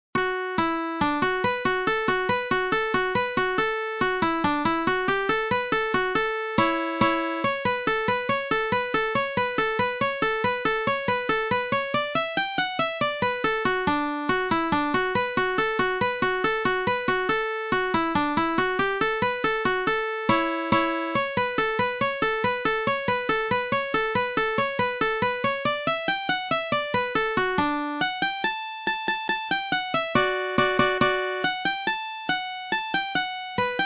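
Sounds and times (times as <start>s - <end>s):
mandolin playing a folk tune: 0.2s - 33.8s.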